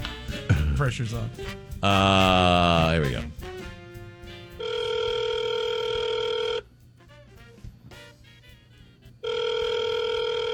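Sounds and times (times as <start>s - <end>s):
speech: 0.8s - 3.4s
telephone ringing as a comedy sound effect: 4.6s - 6.6s, 9.2s - 10.5s.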